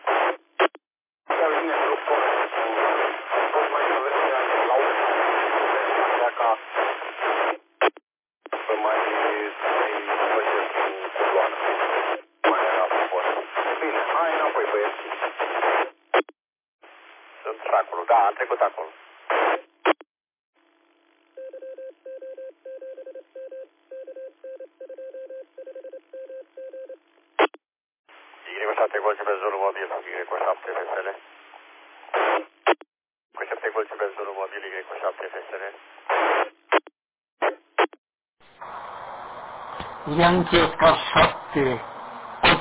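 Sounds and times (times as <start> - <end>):
radio static and hiss: 0.0 - 20.0, 27.4 - 32.8, 33.4 - 42.5
voice over a band-limited long-distance radio transmission: 1.3 - 7.3, 8.5 - 15.7, 17.4 - 19.5, 28.4 - 31.2, 33.4 - 35.8, 40.0 - 41.8.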